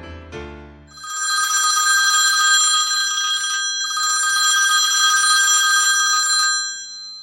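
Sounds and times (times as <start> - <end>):
old-fashioned telephone bell ringing: 0.9 - 7.2.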